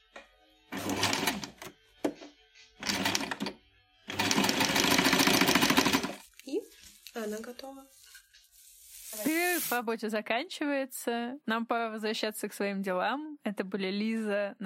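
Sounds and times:
sewing machine stitching fabric for drawstring produce bags: 0.7s - 1.7s, 2.8s - 3.5s, 4.1s - 6.2s
speech: 7.4s - 8.0s, 9.2s - 14.6s.

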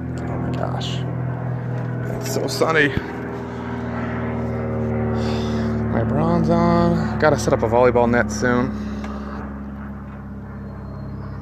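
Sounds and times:
propeller airplane droning overhead: 0.0s - 11.4s
speech: 0.8s - 1.1s, 2.2s - 3.2s, 6.0s - 8.8s.

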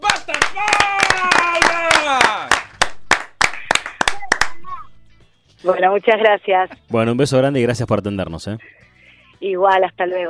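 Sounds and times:
rhythmic hand claps as applause for a swimming team: 0.0s - 4.7s
speech: 5.6s - 8.8s, 9.4s - 10.2s.

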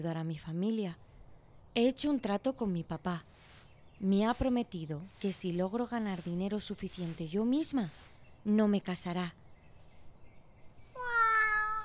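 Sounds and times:
speech: 0.0s - 1.1s, 1.8s - 9.4s
cat meowing behind a window: 11.0s - 11.8s.

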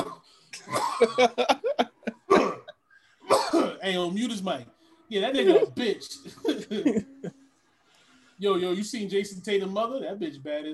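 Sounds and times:
commentator coughing harshly: 0.0s - 1.4s, 2.3s - 3.8s
speech: 1.0s - 1.6s, 3.8s - 7.1s, 8.4s - 10.7s
laughter: 1.0s - 2.4s, 6.2s - 7.4s.

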